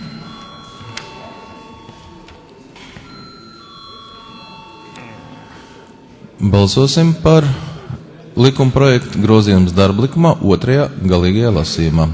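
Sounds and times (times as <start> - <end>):
parliament voting bell ringing during a chamber session: 0.0 - 6.8
room noise: 0.0 - 10.4
speech: 6.4 - 7.6, 8.4 - 12.1.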